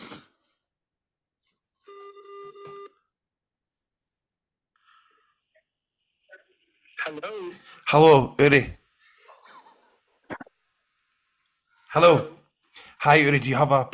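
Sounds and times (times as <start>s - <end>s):
telephone ringing tone over a phone line: 1.9s - 2.9s
speech: 7.1s - 8.8s, 12.0s - 12.4s, 13.0s - 13.9s.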